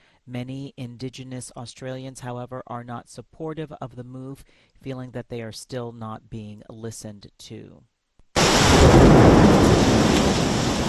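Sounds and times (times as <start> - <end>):
speech: 0.3 - 7.9
low thunder rumbling: 8.4 - 10.8
torrential rain in a thunderstorm: 8.4 - 10.8.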